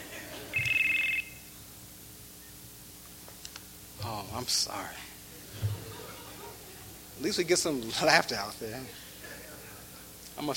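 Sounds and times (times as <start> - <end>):
laughter: 0.0 - 0.6, 5.3 - 7.3, 8.8 - 10.1
cell phone ringing in an audience: 0.5 - 1.5
speech: 4.3 - 5.7, 7.2 - 9.0, 10.4 - 10.5.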